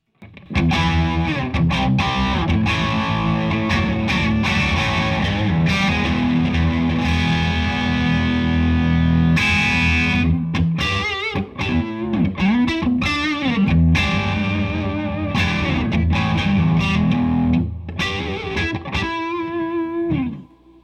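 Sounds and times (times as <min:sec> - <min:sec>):
distorted electric guitar playing chords and riffs through an overdriven amp: 0:00.2 - 0:20.8.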